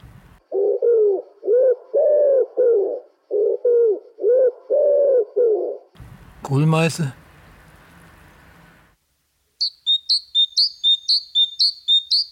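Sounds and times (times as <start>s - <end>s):
wood pigeon cooing: 0.4s - 5.9s
speech: 6.5s - 7.2s.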